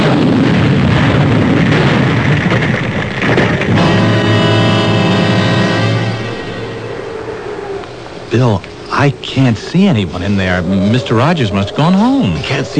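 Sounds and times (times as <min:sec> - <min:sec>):
loud crackling explosion: 0:00.0 - 0:07.3
speech: 0:08.4 - 0:12.7.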